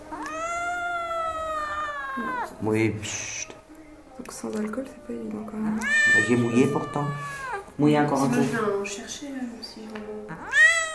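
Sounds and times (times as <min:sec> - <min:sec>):
cat meowing while being held: 0:00.0 - 0:02.6, 0:05.8 - 0:07.8, 0:10.3 - 0:10.9
speech: 0:02.2 - 0:03.5, 0:04.2 - 0:10.6.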